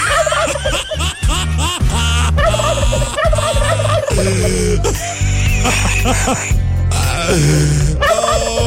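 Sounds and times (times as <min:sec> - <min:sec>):
turkeys gobbling: 0:00.0 - 0:01.3, 0:01.9 - 0:04.5
laughter: 0:00.0 - 0:08.6
speech: 0:05.7 - 0:06.6, 0:07.3 - 0:08.0.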